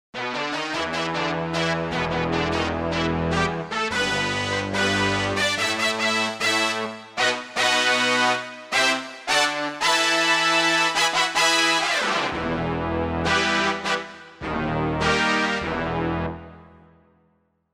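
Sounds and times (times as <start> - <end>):
brass ensemble playing: 0.2 - 16.8.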